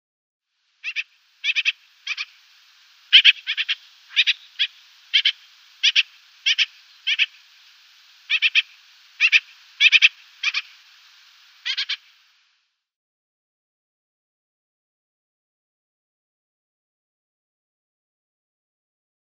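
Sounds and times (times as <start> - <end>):
Eurasian Magpie mauritanica calls: 0.8 - 2.4, 3.1 - 7.5, 8.2 - 10.9, 11.6 - 12.2.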